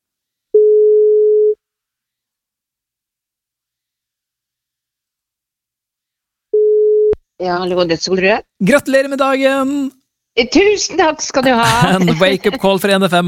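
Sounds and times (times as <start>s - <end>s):
telephone ringback tone while calling: 0.6s - 1.6s, 6.6s - 7.2s
speech: 7.4s - 13.2s
laughter: 11.4s - 13.2s.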